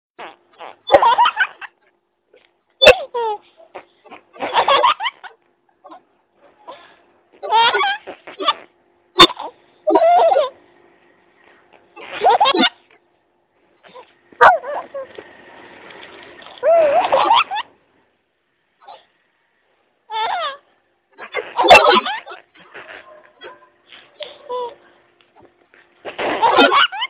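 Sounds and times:
children laughing: 0.9s - 1.8s, 2.8s - 6.0s, 7.4s - 10.6s, 12.0s - 12.9s, 13.8s - 15.2s, 16.6s - 17.8s, 21.2s - 24.8s, 26.1s - 27.0s.

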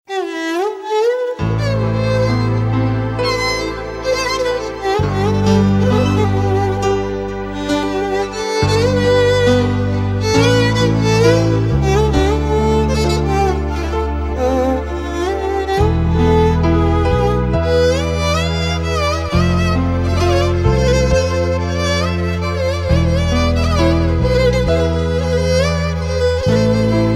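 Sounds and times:
very sad classical violin music: 0.0s - 27.1s.

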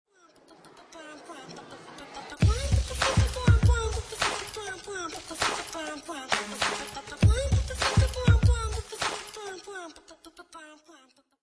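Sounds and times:
beatboxing: 2.4s - 4.6s, 5.3s - 9.4s.

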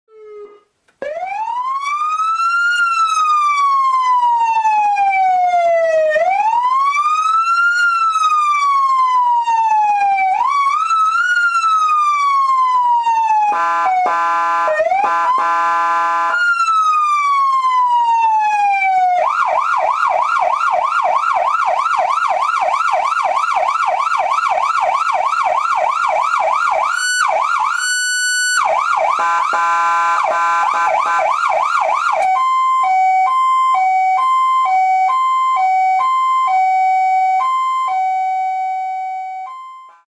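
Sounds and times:
Federal Signal PA300 siren: 0.1s - 40.0s.

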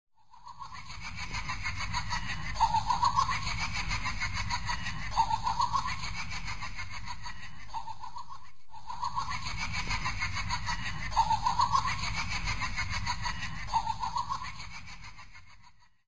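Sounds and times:
puppet laughing: 0.2s - 16.0s.

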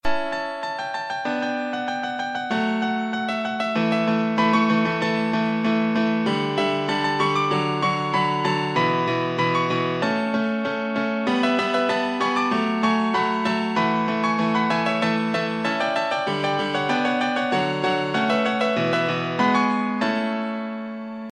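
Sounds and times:
piano intro: 0.0s - 21.3s.

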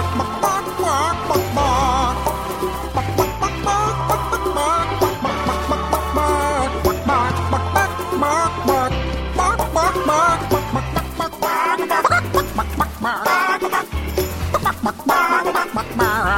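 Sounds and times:
chickens clucking: 0.0s - 16.3s.

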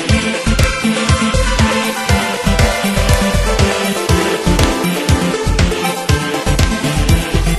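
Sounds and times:
phone ringtone synth: 0.1s - 7.5s.

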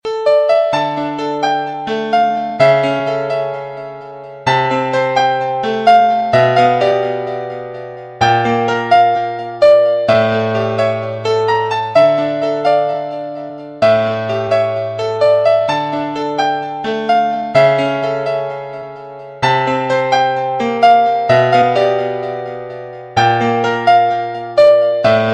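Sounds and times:
piano: 0.0s - 25.3s.

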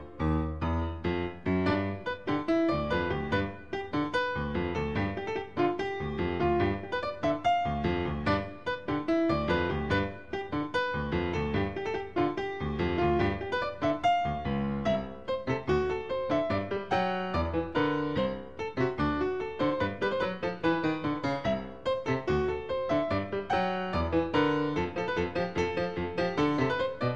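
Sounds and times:
piano loop: 0.0s - 27.1s.

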